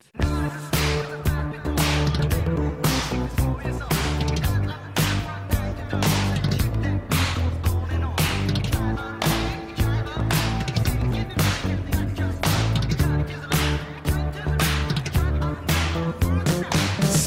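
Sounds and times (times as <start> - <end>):
repeating bassline: 0.2 - 17.2
synth chords: 0.2 - 17.2
sharp snare cracks: 1.8 - 3.3, 6.0 - 7.6, 8.2 - 9.6, 10.4 - 11.8, 12.4 - 13.9, 14.6 - 16.1.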